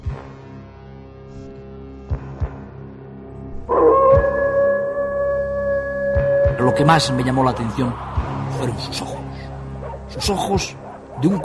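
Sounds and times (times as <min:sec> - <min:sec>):
low droning background: 0:00.1 - 0:11.4
wolf howling: 0:03.7 - 0:11.4
speech: 0:06.7 - 0:09.2, 0:10.1 - 0:11.4.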